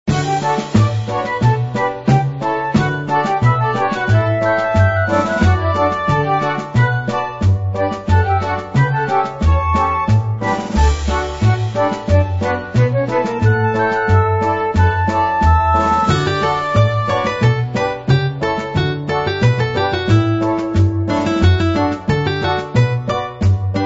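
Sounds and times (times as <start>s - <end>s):
theme music: 0.1s - 23.8s.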